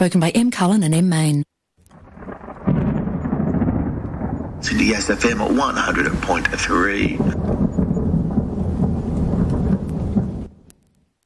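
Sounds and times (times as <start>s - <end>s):
speech: 0.0s - 1.5s, 4.6s - 7.7s
loud continuous roll of thunder with deep low rumbling: 1.9s - 10.8s
rain-like hiss: 1.9s - 11.2s.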